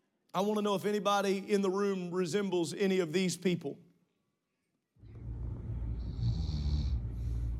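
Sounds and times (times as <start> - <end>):
speech: 0.4 - 3.9
person snoring loudly with a rattling throaty snore: 5.4 - 7.5.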